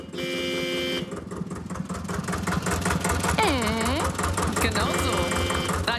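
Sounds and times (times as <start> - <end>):
sustained horn-like tone: 0.0 - 1.1, 4.9 - 5.8
old historic tractor engine chugging at a tractor meet: 0.0 - 5.9.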